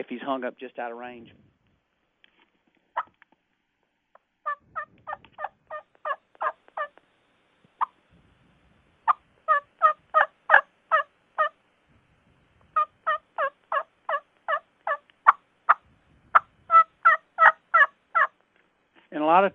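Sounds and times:
speech: 0:00.0 - 0:01.5, 0:19.3 - 0:19.5
soft hen turkey yelps imitated on a turkey call: 0:04.4 - 0:07.0, 0:09.1 - 0:11.6, 0:12.8 - 0:18.4.

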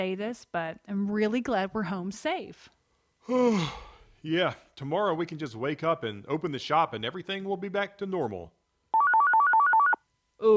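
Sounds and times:
speech: 0:00.0 - 0:08.6
phone ringtone in a two-note electronic pattern: 0:08.9 - 0:10.0.

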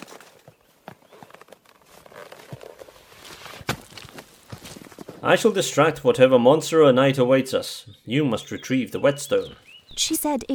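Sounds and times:
horse hooves clip-clopping at a walking pace: 0:00.0 - 0:05.3
speech: 0:05.2 - 0:10.5.

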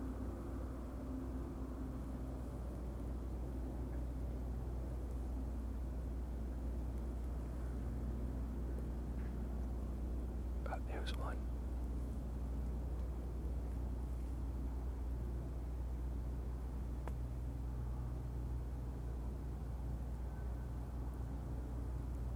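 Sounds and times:
traffic rumble near outdoor wetlands: 0:00.0 - 0:22.3
speech: 0:10.9 - 0:11.5.

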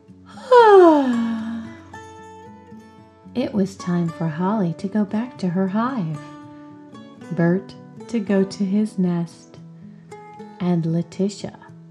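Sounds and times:
voice imitating a yawn: 0:00.3 - 0:01.8
speech: 0:03.4 - 0:06.3, 0:07.3 - 0:09.6, 0:10.6 - 0:11.6.

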